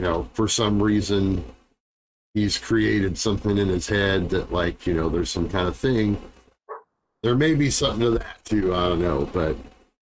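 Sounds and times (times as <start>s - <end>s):
speech: 0.0s - 1.6s, 2.3s - 6.3s, 7.2s - 9.7s
dog bark: 6.7s - 6.9s.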